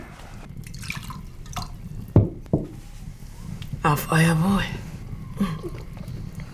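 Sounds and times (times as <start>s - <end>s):
wine pouring into a glass with glugs, splashes and drips: 0.6s - 1.8s
speech: 3.9s - 4.8s, 5.4s - 5.9s.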